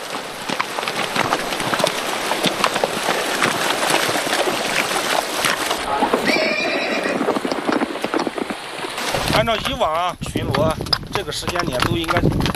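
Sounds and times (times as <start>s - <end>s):
steady wash of a shallow, narrow river: 0.0s - 10.1s
patrol horses' hooves splashing and clopping through a shallow gravel-bed river in the rain: 0.0s - 12.5s
horse whinnying: 2.3s - 9.2s
speech: 9.4s - 12.5s.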